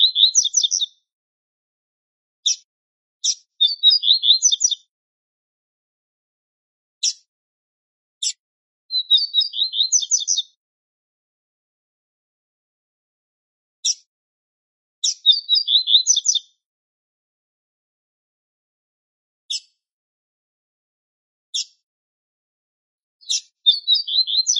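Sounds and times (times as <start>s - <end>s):
male double-collared seedeater twittering song: 0.0s - 0.9s, 3.2s - 4.8s, 8.3s - 10.6s, 15.0s - 16.5s, 23.2s - 24.5s.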